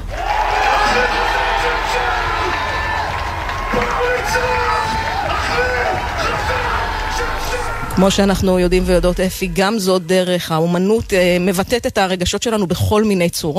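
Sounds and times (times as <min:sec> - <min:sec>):
large crowd of metal fans screaming and shouting: 0:00.0 - 0:08.3
speech: 0:08.0 - 0:13.5.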